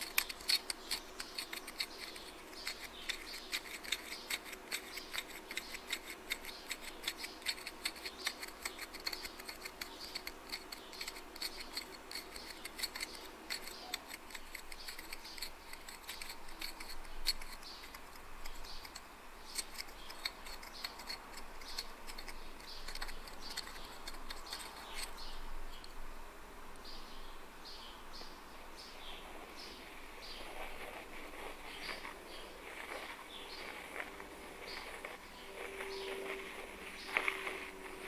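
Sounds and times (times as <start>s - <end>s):
dry scratching: 0.0s - 25.5s, 29.1s - 38.0s
faint low hum: 0.0s - 38.0s.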